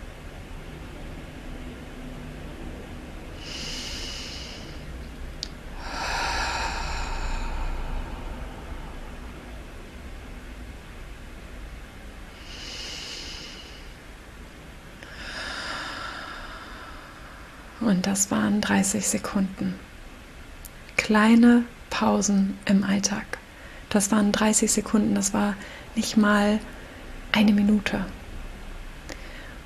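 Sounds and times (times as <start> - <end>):
faint steady hiss: 0.0 - 29.6
slow deep breathing in and out: 3.4 - 9.8, 12.3 - 14.1, 15.0 - 17.8, 29.1 - 29.6
speech: 17.8 - 19.9, 21.1 - 28.2.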